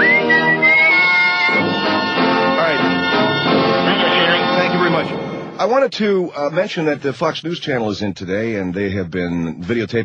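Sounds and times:
person whistling along with theme music: 0:00.0 - 0:02.0
program theme music: 0:00.0 - 0:05.9
speech: 0:05.7 - 0:10.0.

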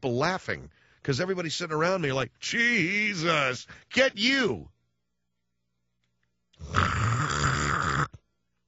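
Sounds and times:
speech: 0:00.0 - 0:04.8
loud rasping snore: 0:06.6 - 0:08.2.

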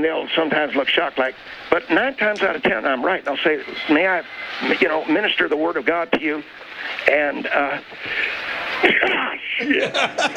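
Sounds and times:
speech: 0:00.0 - 0:10.3
laughter: 0:08.3 - 0:10.3
person sneezing: 0:08.8 - 0:09.7.

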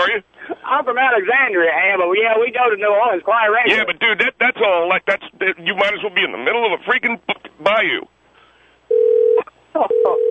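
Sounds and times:
speech: 0:00.7 - 0:08.1, 0:08.9 - 0:10.3
telephone ringing in long electronic tones: 0:08.9 - 0:10.3.

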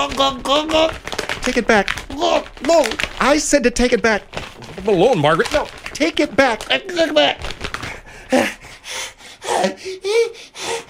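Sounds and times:
speech: 0:00.0 - 0:07.6, 0:08.3 - 0:10.8
loud exaggerated heavy breathing with groaning breaths: 0:07.7 - 0:10.8.

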